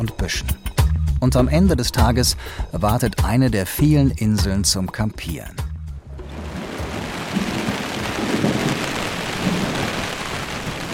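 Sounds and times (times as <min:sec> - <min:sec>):
speech: 0:00.0 - 0:05.7
deep gusty rumbles of wind: 0:05.8 - 0:10.9
wind and heavy rain battering a tent pitched on sand: 0:06.1 - 0:10.9.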